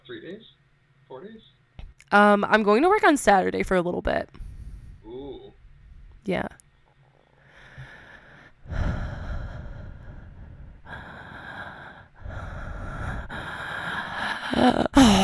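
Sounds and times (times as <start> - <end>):
speech: 0.2 - 4.4, 6.2 - 6.6, 14.6 - 15.2
heavy congested breathing of a person with COVID symptoms: 4.4 - 6.1, 7.4 - 15.2.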